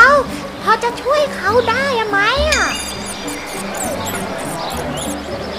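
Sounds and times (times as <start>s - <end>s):
speech: 0.1s - 2.9s
crowd of small animals murmuring and whispering: 2.5s - 5.3s.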